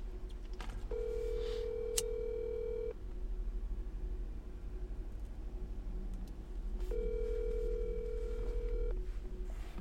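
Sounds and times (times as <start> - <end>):
low hum: 0.0 - 9.7
outgoing phone call electronic ringback tones: 0.9 - 2.9, 6.9 - 9.0.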